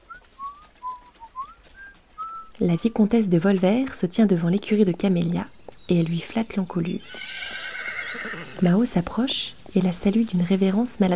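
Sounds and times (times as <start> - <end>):
soft whistling: 0.0 - 2.9
speech: 2.6 - 7.3, 8.3 - 11.1.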